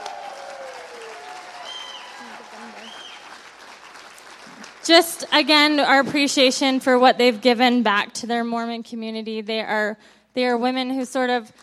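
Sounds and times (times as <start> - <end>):
cheers: 0.0 - 4.7
steady audience applause: 0.0 - 5.4
faint whistles: 2.8 - 3.4
speech: 4.9 - 11.6.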